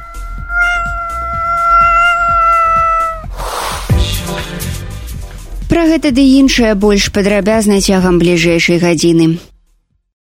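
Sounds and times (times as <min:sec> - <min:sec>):
cat giving a long drawn-out yowl: 0:00.0 - 0:03.3
soft rhythmic low thumping beat: 0:00.0 - 0:08.2
sharp hissing burst: 0:03.2 - 0:05.6
speech: 0:05.9 - 0:09.5.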